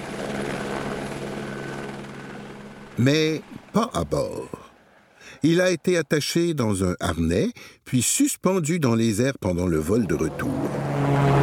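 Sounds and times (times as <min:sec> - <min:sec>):
helicopter flying with rotor drone and engine hum: 0:00.0 - 0:06.0, 0:09.8 - 0:11.4
speech: 0:03.0 - 0:04.6, 0:05.2 - 0:11.4.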